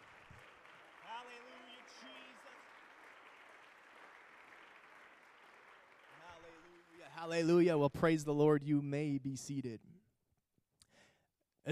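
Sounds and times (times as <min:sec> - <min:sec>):
audience clapping hands in praise: 0:00.0 - 0:07.6
speech: 0:01.2 - 0:02.6, 0:06.4 - 0:10.0.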